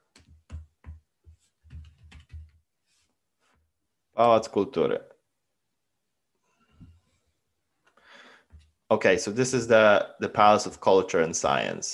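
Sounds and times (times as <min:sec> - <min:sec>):
clicky keystrokes on a Polish computer keyboard: 0:01.6 - 0:02.6
speech: 0:04.2 - 0:05.1, 0:08.9 - 0:11.9.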